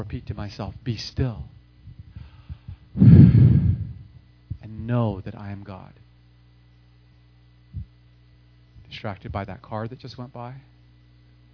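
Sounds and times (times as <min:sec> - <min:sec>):
speech: 0:00.0 - 0:01.6, 0:03.0 - 0:03.2, 0:04.8 - 0:06.0, 0:09.0 - 0:10.7
faint low thumps: 0:01.8 - 0:04.8, 0:07.7 - 0:08.0
breath drawn in during quiet prayerful meditation: 0:02.2 - 0:04.0.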